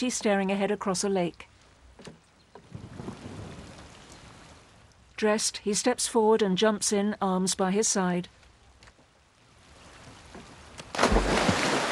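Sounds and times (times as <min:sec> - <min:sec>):
speech: 0:00.0 - 0:02.2, 0:05.2 - 0:08.4
steady rain pattering onto a still pond surface: 0:01.4 - 0:05.7, 0:08.3 - 0:11.9.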